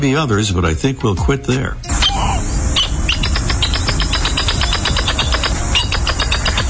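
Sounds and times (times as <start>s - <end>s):
speech: 0.0s - 2.0s
low rumble: 1.7s - 6.6s
northern jacana chattering calls: 1.9s - 6.6s.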